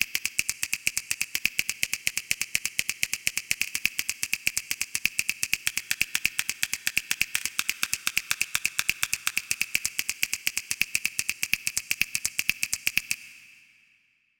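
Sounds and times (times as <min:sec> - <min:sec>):
fast snaps: 0:00.2 - 0:13.3.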